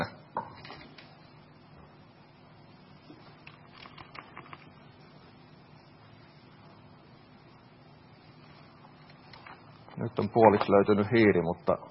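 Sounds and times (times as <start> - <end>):
low hum: 0.0 - 11.9
typing on a laptop keyboard: 3.4 - 4.7
speech: 10.0 - 11.9.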